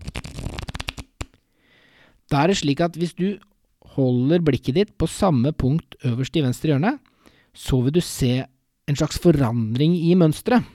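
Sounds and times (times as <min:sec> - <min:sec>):
thumb riffling through a deck of cards: 0:00.0 - 0:01.4
speech: 0:02.3 - 0:07.0, 0:07.6 - 0:10.7.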